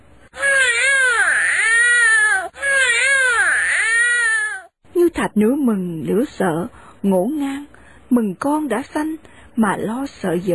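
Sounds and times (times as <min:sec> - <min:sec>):
newborn baby crying: 0:00.4 - 0:04.7
speech: 0:05.2 - 0:10.5.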